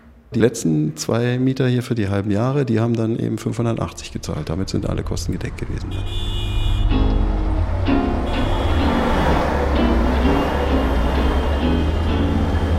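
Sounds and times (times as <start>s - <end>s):
speech: 0.3s - 6.5s
trains at an S-Bahn and U-Bahn station rumbling with a droning tonal hum: 3.5s - 12.7s.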